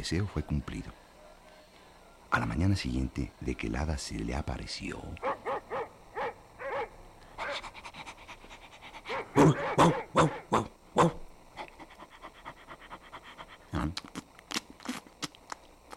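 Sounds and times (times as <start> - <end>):
speech: 0.0 - 1.0, 2.3 - 5.4, 9.4 - 11.2
large dog barking deep woofs: 5.2 - 7.8, 9.0 - 11.2
large dog panting: 7.4 - 10.4, 11.6 - 13.7.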